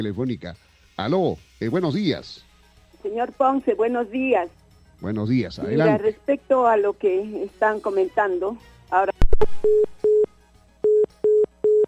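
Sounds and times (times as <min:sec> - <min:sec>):
speech: 0:00.0 - 0:10.2
disconnected telephone line tone beeps after a call drops: 0:09.2 - 0:10.3.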